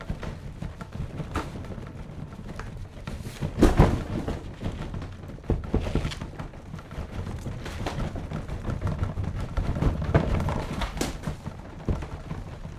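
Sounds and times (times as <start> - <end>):
items falling to floor in an earthquake: 0.2 - 12.6
household wooden sideboard shaking and rattling in an earthquake: 2.7 - 11.6.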